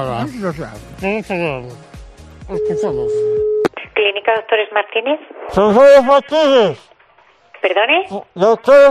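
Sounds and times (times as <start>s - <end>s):
speech: 0.0s - 1.9s, 2.5s - 6.9s, 7.6s - 8.9s
continuous telephone line tone: 2.6s - 3.7s.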